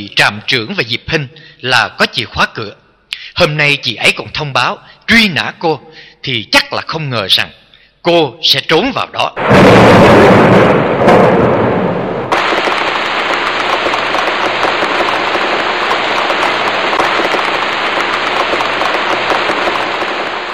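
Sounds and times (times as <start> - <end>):
speech: 0.0 - 2.8, 3.4 - 11.6
light rain at nightfall pattering on surfaces: 12.3 - 20.5.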